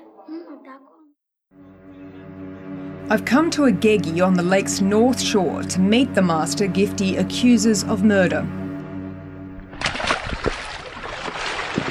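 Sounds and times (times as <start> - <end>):
low droning hum: 1.6 - 11.4
speech: 3.1 - 8.6
shallow lake water sloshing and splashing as someone in rubber boots climbs out of a boat: 9.6 - 11.8.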